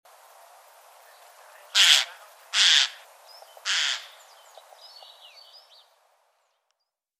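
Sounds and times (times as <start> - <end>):
Eurasian jay Garrulus glandarius screeching: 1.8 - 3.0.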